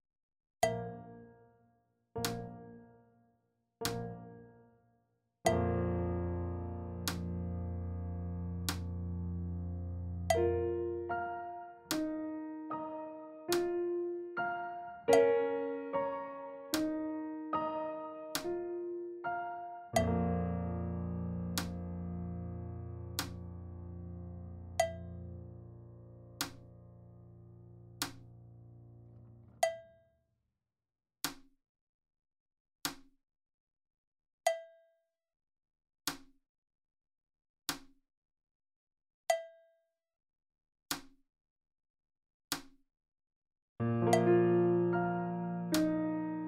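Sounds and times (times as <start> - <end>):
slow piano playing: 0.6 - 1.6, 2.2 - 3.1, 3.8 - 4.8, 5.5 - 29.6, 43.8 - 46.4.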